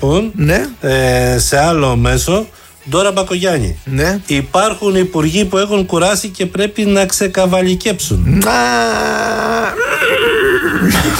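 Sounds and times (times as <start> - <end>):
speech: 0.0 - 10.2
person imitating a horse's neigh: 8.2 - 11.1.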